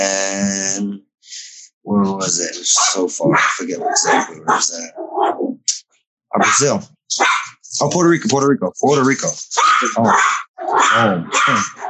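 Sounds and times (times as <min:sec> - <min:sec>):
laughter: 0:00.0 - 0:04.9
speech: 0:02.3 - 0:05.4, 0:06.3 - 0:11.8
dogs barking: 0:02.7 - 0:05.4, 0:06.4 - 0:07.6, 0:09.5 - 0:11.8.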